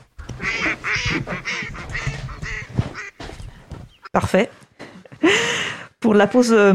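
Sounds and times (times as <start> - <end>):
flock of ducks quacking in flight: 0.0 - 4.2
speech: 4.2 - 4.6, 6.0 - 6.7.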